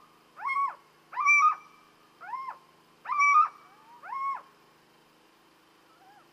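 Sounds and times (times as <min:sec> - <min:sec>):
little owl giving nasal downward-curving yelps: 0:00.4 - 0:04.5, 0:05.9 - 0:06.3.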